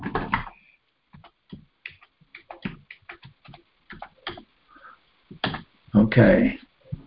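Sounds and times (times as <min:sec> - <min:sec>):
typing on a computer keyboard: 0:00.0 - 0:00.6, 0:01.2 - 0:04.5, 0:05.3 - 0:05.7
speech: 0:06.1 - 0:06.7.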